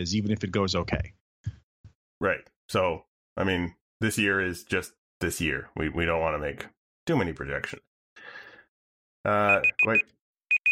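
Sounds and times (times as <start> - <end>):
speech: 0.0 - 1.2, 2.2 - 8.4, 9.2 - 10.2
small timer alarm beeping: 9.5 - 10.7.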